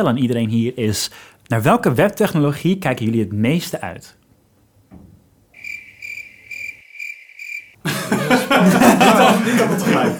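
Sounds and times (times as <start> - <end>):
speech: 0.0 - 4.2, 8.6 - 10.1
cricket chirping sound effect: 5.6 - 7.8
laughter: 7.8 - 10.1.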